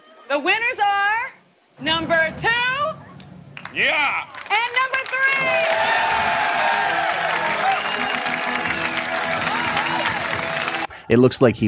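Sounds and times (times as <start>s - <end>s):
speech: 0.3s - 2.8s, 3.7s - 6.1s, 11.1s - 11.6s
crowd applauding with dense clapping: 3.2s - 10.9s.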